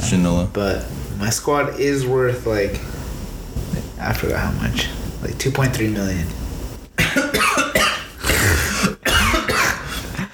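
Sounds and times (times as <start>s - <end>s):
speech: 0.1s - 3.0s, 4.0s - 6.4s
harsh raspy coughing with throat-clearing: 7.0s - 10.3s.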